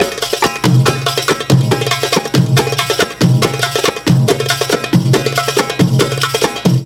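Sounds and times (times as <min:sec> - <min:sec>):
drum percussion break: 0:00.0 - 0:06.8.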